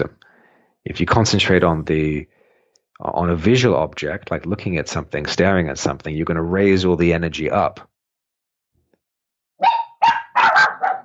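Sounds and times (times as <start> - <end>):
speech: 0.8 - 2.4, 3.0 - 7.9
dog barking: 9.6 - 11.0.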